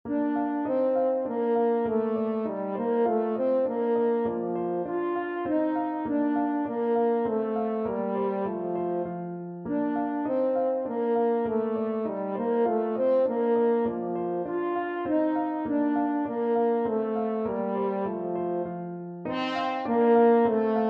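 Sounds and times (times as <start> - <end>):
French horn melody: 0.1 - 20.8.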